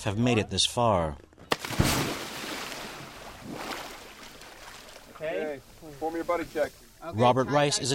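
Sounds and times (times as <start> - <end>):
speech: 0.0 - 1.8, 5.2 - 7.9
steady wind on the open ocean: 0.0 - 7.9
water sloshing and splashing against a small dive boat on open sea: 1.5 - 7.1.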